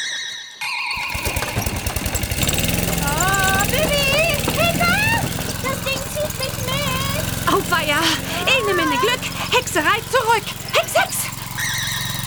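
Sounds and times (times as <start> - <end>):
lawnmower engine starting and revving up: 0.9 - 12.2
speech: 9.8 - 11.2.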